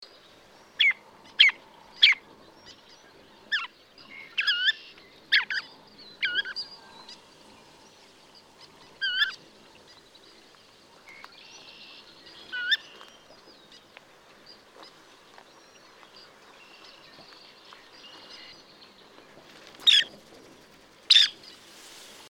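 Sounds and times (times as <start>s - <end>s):
dunlin Calidris alpina calling: 0.8s - 15.0s.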